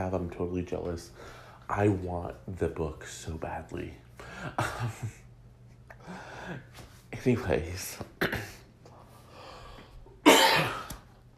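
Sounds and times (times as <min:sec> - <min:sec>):
speech: 0:00.1 - 0:05.2, 0:06.1 - 0:08.6
faint breathing: 0:01.1 - 0:01.7, 0:05.9 - 0:06.8, 0:09.0 - 0:10.2
cough: 0:08.2 - 0:08.7, 0:10.2 - 0:11.0.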